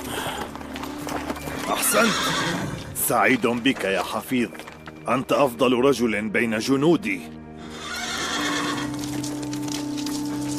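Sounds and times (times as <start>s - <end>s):
horse hooves clip-clopping on the ground: 0.0s - 5.7s, 7.7s - 10.5s
horse neighing with a long shrill whinny: 1.6s - 3.0s, 7.6s - 9.1s
speech: 1.9s - 7.4s.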